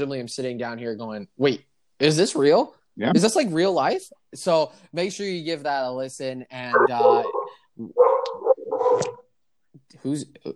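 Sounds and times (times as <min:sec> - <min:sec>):
speech: 0:00.0 - 0:09.2, 0:09.9 - 0:10.5
dog barking and yipping: 0:06.8 - 0:09.2.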